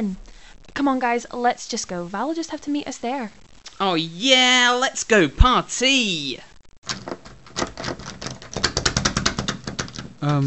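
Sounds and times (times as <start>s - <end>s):
speech: 0.0s - 6.5s, 10.2s - 10.4s
locked jammed door rattled hard: 6.9s - 10.2s.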